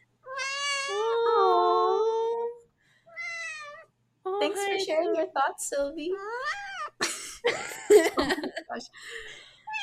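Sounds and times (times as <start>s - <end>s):
cat meowing: 0.2s - 2.3s, 3.1s - 3.9s, 6.3s - 7.0s
speech: 4.4s - 6.6s, 7.4s - 9.4s
laughter: 7.0s - 8.8s.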